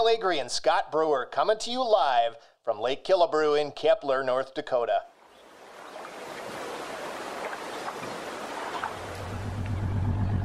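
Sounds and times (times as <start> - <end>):
speech: 0.0 - 5.1
rushing water from a boat moving across a lake: 5.2 - 9.6
low boat motor hum: 8.9 - 10.4.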